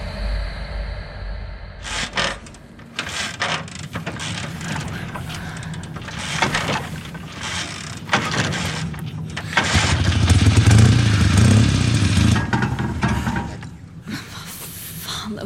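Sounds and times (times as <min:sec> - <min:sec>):
clanking mechanical noises: 0:01.8 - 0:14.0
engine needing a new spark plug cranking and running roughly: 0:01.8 - 0:14.0.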